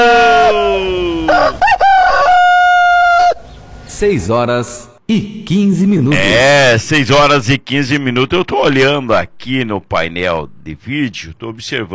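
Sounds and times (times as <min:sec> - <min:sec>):
rooster crowing: 0:00.0 - 0:03.5
speech: 0:04.0 - 0:11.9.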